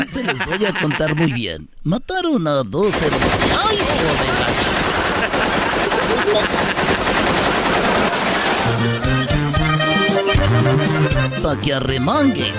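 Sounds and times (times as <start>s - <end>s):
laughter: 0.0s - 1.5s, 4.4s - 7.5s
speech: 0.0s - 4.6s, 6.3s - 7.0s, 10.7s - 12.5s
AK-47 automatic rifle fire: 2.9s - 8.9s
music with brass and bass: 8.6s - 12.5s.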